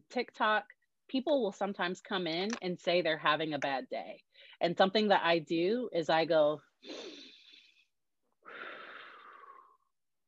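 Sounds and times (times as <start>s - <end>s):
speech: 0.1s - 7.2s
deep human breath: 6.8s - 9.9s.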